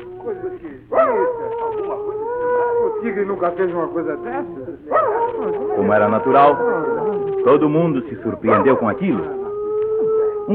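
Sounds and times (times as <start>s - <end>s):
hunting dog howling: 0.0s - 10.5s
speech: 0.3s - 2.2s, 3.0s - 9.4s
hunting dog yelp: 0.9s - 3.2s, 4.9s - 7.7s, 8.4s - 10.5s.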